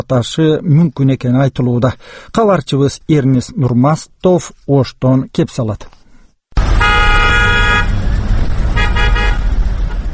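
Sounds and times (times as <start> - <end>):
speech: 0.0 - 6.0
car horn blasts and honks: 6.6 - 8.1, 8.7 - 9.6
car engines rumbling in a queue at a fuel station in Osh: 6.6 - 10.1.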